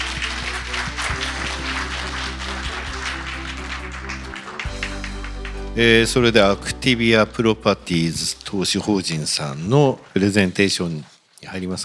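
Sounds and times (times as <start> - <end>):
crowd applauding: 0.0 - 6.6
speech: 5.8 - 11.8.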